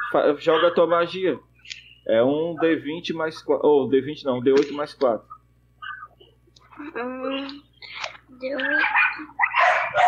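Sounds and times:
dogs barking and yipping while playing: 0.0s - 0.9s, 8.6s - 10.0s
low steady hum: 0.0s - 10.0s
speech: 0.1s - 5.4s, 6.8s - 7.6s, 8.4s - 9.3s
dog whining: 5.8s - 6.2s, 8.6s - 10.0s.

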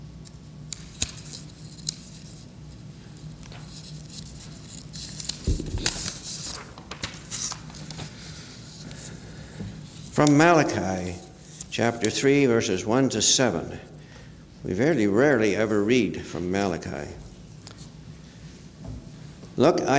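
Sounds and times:
sheets of paper rustling and crinkling as they are shuffled: 3.5s - 9.1s
low hum: 5.4s - 6.4s
speech: 10.2s - 13.9s, 14.6s - 17.2s, 19.6s - 19.9s.

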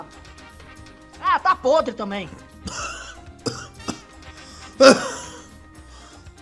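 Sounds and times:
speech: 1.3s - 2.9s, 4.8s - 5.0s
person coughing: 2.7s - 5.4s.

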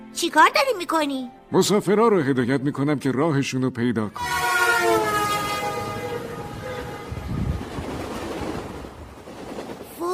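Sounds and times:
speech: 0.2s - 5.1s
train wheels on rails rumbling past: 4.2s - 10.1s.

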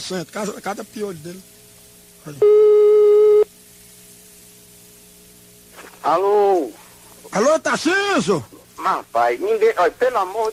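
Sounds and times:
speech: 0.0s - 1.6s, 2.2s - 2.8s, 6.1s - 10.5s
telephone line beep while a call is redialed: 2.4s - 3.5s.

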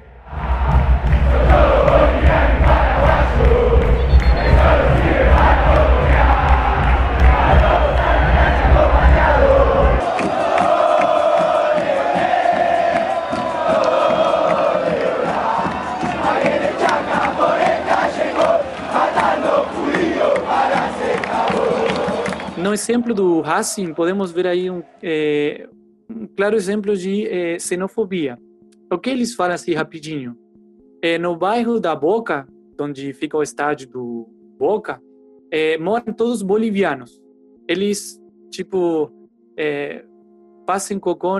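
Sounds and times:
large crowd of football supporters singing a stadium chant in unison: 0.0s - 25.0s
speech: 22.9s - 25.7s, 26.4s - 30.4s, 31.0s - 40.1s, 40.7s - 41.3s.

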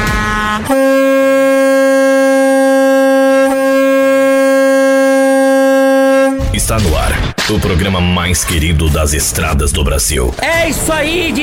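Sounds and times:
truck air horn blaring: 0.0s - 6.5s
speech: 0.6s - 1.0s, 6.7s - 11.4s.

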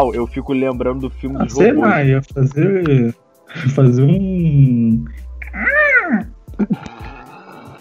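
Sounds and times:
speech: 0.0s - 6.9s
person imitating a cat meow: 5.4s - 6.4s
short clipped vocal sounds: 5.4s - 7.7s.

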